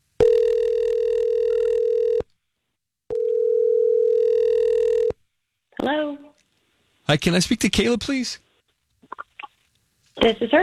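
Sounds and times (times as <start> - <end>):
telephone ringback tone heard from the caller's end: 0.2 - 2.2, 3.1 - 5.1
speech: 7.1 - 8.4, 10.2 - 10.6.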